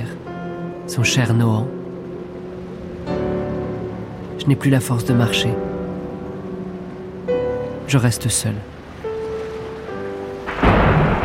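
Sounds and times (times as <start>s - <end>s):
heavy rain from a violent thunderstorm: 0.0s - 11.2s
speech: 0.9s - 1.8s, 4.4s - 5.7s, 7.9s - 8.8s
thunder from a violent thunderstorm: 10.5s - 11.2s.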